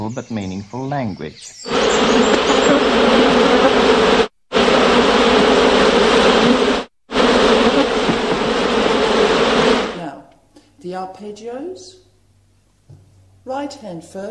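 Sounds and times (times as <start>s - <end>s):
speech: 0.1s - 4.2s, 11.0s - 12.0s, 13.4s - 14.3s
foraging bees humming: 1.4s - 10.0s.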